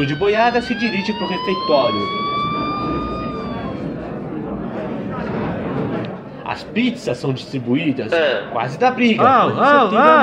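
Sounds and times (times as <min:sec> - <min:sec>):
speech: 0:00.0 - 0:02.2, 0:06.6 - 0:10.2
factory siren wailing at noon: 0:00.0 - 0:04.8
indistinct voices: 0:00.0 - 0:06.6, 0:09.2 - 0:10.2
crowd noise: 0:00.0 - 0:10.2.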